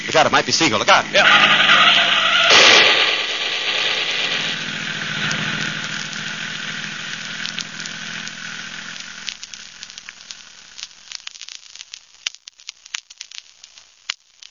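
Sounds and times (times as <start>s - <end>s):
roaring engine of a speeding car rushing past: 0.0s - 10.1s
speech: 0.2s - 2.1s
loud burst: 0.8s - 10.8s
sharp cracks and pops of gunshots: 1.3s - 6.1s.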